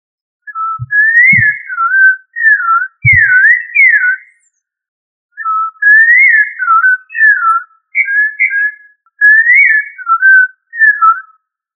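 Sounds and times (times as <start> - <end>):
sabiá thrush of the Turdidae family singing whistled phrases: 0.4 - 4.6, 5.4 - 11.5
low thumps: 0.6 - 1.9, 3.0 - 3.5.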